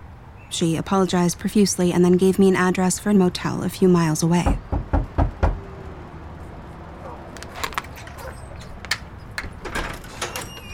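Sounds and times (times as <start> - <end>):
speech: 0.5 - 4.8
firm knocks on a door: 4.4 - 5.6.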